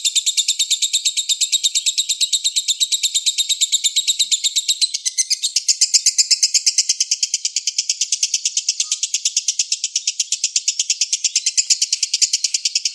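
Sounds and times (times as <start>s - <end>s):
Oriental magpie-robin singing a rapid rattle of bright repeated notes: 0.0s - 12.9s.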